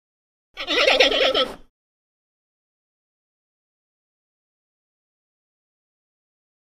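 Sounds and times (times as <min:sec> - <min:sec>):
titi monkey whining call: 0:00.6 - 0:01.7.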